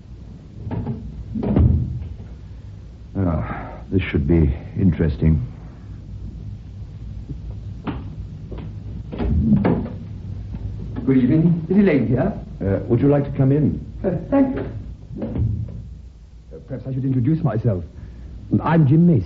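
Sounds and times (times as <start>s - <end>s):
wooden door being shut with knocks and clatters: 0.6s - 2.2s, 9.1s - 10.0s, 14.5s - 15.9s
speech: 3.9s - 5.6s, 11.1s - 15.3s, 16.7s - 19.2s.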